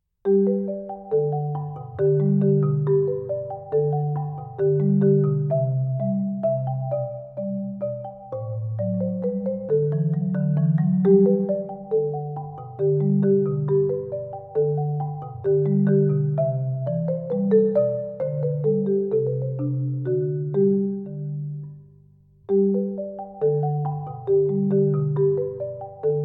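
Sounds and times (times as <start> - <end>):
minuet music: 0.3 - 26.2.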